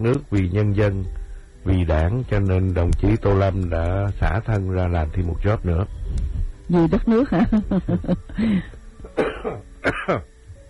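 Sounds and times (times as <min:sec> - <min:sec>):
speech: 0:00.0 - 0:06.0, 0:06.7 - 0:10.3
person clearing throat: 0:09.1 - 0:10.3
person coughing: 0:09.1 - 0:10.3.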